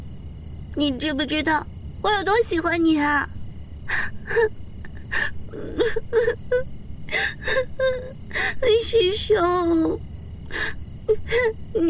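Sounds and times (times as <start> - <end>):
speech: 0.8 - 10.0, 10.6 - 11.8
young woman crying: 3.8 - 11.8.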